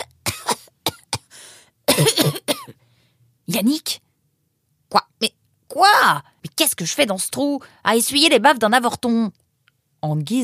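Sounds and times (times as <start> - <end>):
person coughing: 0.0 - 1.3, 1.9 - 2.8
raspy breath: 1.3 - 1.8
speech: 3.6 - 4.0, 5.8 - 9.4, 10.0 - 10.4.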